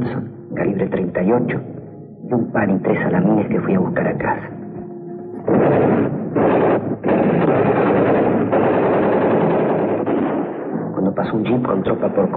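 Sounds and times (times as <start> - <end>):
speech: 1.2 - 4.6, 11.2 - 12.3
machine-gun fire during street fighting: 5.5 - 10.9.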